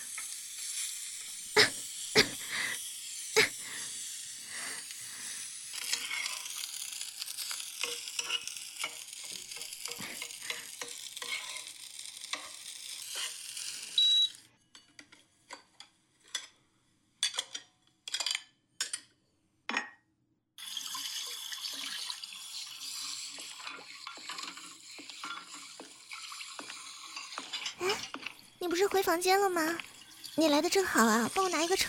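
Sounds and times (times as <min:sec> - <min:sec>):
food sizzling and crackling in a hot pan: 0:00.0 - 0:14.4, 0:20.6 - 0:31.8
sharp scraping stirs and clinks in a pan: 0:05.3 - 0:13.8, 0:20.9 - 0:31.8
speech: 0:28.7 - 0:31.8.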